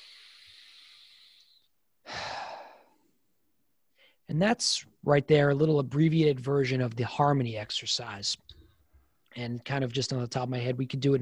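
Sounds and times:
slow deep breath: 0.0s - 3.1s, 4.0s - 4.2s
speech: 4.3s - 8.5s, 9.4s - 11.2s.

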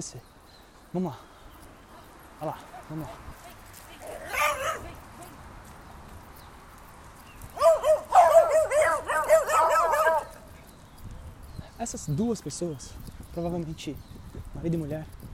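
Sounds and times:
speech: 0.0s - 0.3s, 0.9s - 1.3s, 2.4s - 3.4s, 11.8s - 15.2s
dogs barking excitedly with high yips and yelps: 1.9s - 5.4s, 7.4s - 10.7s.

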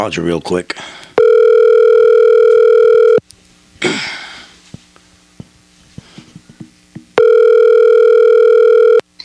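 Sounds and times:
telephone dial tone: 1.2s - 3.2s, 7.2s - 9.0s.

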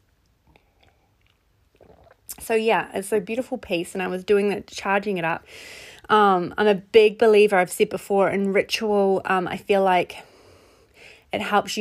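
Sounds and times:
person sipping coffee: 0.4s - 2.3s
soft slurping and swallowing mouth sounds: 0.4s - 2.4s
speech: 2.5s - 10.3s, 11.3s - 11.8s.

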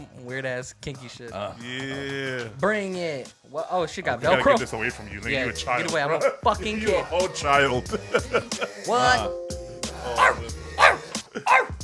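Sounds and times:
speech: 0.2s - 10.6s
laughter: 5.4s - 9.2s, 10.2s - 11.8s
person imitating dog barks: 5.9s - 6.6s, 10.0s - 11.8s.

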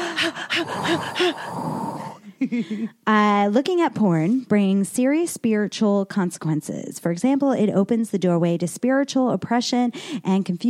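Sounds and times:
person taking deep gasping breaths: 0.0s - 2.8s
speech: 2.4s - 10.6s.

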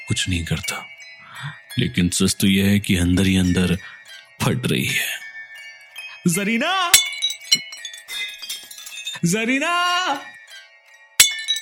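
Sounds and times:
speech: 0.1s - 5.2s, 6.2s - 7.7s, 9.2s - 10.3s
metal and glass kitchenware falling and clattering: 7.0s - 9.2s, 11.2s - 11.6s.

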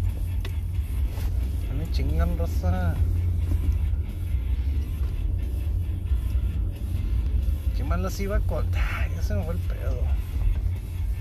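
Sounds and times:
car driving in heavy traffic: 0.0s - 11.1s
speech: 2.0s - 3.7s, 7.9s - 10.2s.

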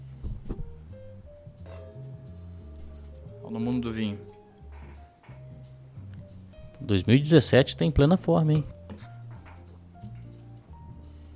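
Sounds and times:
crystal wine glasses clinking in a toast: 1.6s - 5.0s
speech: 3.5s - 4.4s, 6.9s - 8.8s.

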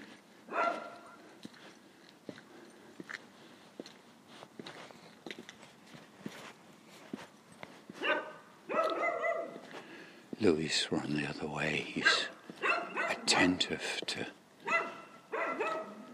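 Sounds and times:
soft footsteps: 0.0s - 10.5s, 12.0s - 13.0s
small Cocker Spaniel barking: 0.5s - 1.2s, 8.0s - 9.6s, 12.0s - 13.4s, 14.6s - 16.1s
speech: 10.4s - 12.3s, 13.3s - 14.4s.

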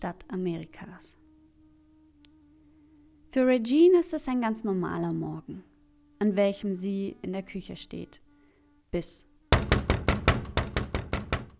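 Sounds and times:
speech: 0.0s - 1.2s, 3.3s - 8.2s, 8.9s - 9.7s
heavy pounding on the door of a home: 9.5s - 11.5s.

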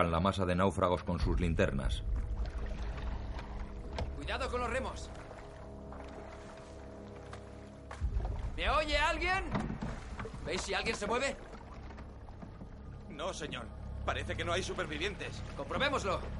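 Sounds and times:
speech: 0.0s - 2.2s, 4.3s - 5.2s, 8.6s - 11.5s, 13.2s - 16.3s
rowed lifeboat moving through icy water: 1.2s - 16.3s.

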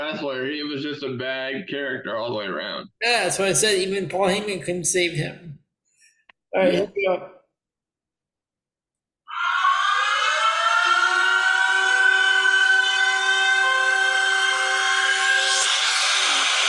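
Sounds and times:
speech: 0.0s - 5.6s, 6.5s - 7.4s
siren wail in wrestling entrance theme: 9.3s - 16.5s.

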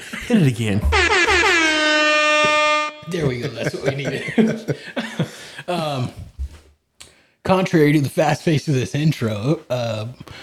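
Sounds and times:
speech: 0.3s - 1.2s, 3.1s - 6.2s, 7.5s - 10.4s
loud air horn blasts: 0.8s - 3.2s
laughter: 3.1s - 6.0s.

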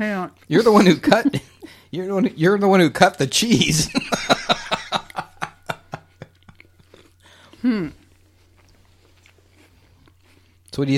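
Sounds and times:
speech: 0.0s - 4.4s, 7.6s - 8.0s, 10.8s - 10.9s
laughter: 0.6s - 1.6s, 3.6s - 6.6s
woman chewing a bite of Honeybee apple: 5.0s - 10.8s.

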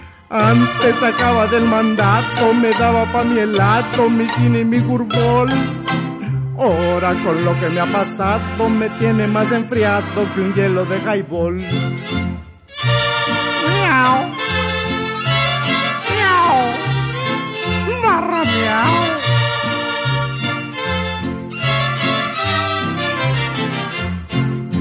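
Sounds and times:
speech: 0.3s - 5.8s, 6.6s - 12.2s
loud continuous band music: 0.4s - 24.7s
voices imitating drawn-out sliding cat meows: 13.6s - 14.4s, 16.0s - 17.0s.

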